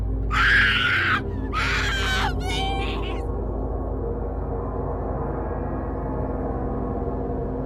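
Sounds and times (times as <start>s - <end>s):
steady low hum: 0.0s - 7.6s
woman screaming in excruciating pain: 0.3s - 3.2s.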